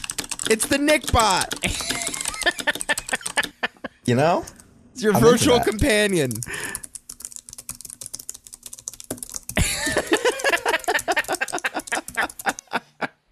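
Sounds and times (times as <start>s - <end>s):
typing on a mechanical keyboard: 0.0s - 3.6s, 5.8s - 12.7s
speech: 0.4s - 2.8s, 4.1s - 6.7s
laughter: 1.6s - 4.0s, 5.2s - 5.8s, 9.6s - 13.2s.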